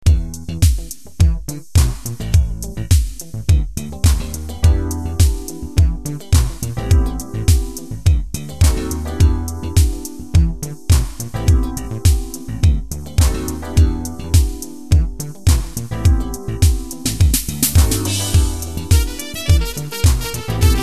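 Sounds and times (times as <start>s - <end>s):
brass funk music: 0.0s - 20.8s.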